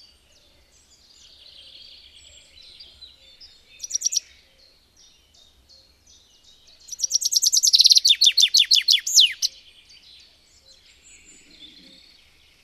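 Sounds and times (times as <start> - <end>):
common chaffinch song: 0.0 - 12.6.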